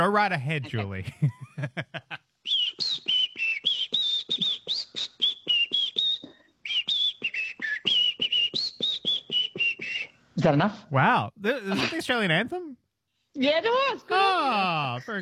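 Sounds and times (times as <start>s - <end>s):
speech: 0.0s - 2.6s, 10.4s - 12.8s, 13.4s - 15.2s
laughter: 0.6s - 2.2s, 11.5s - 12.4s
person whistling a national anthem: 2.5s - 10.2s.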